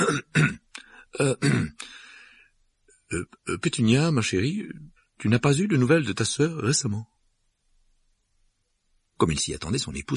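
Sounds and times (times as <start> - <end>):
man nervously clearing his throat: 0.0 - 1.9
speech: 1.2 - 2.0, 3.1 - 7.2, 9.2 - 10.1.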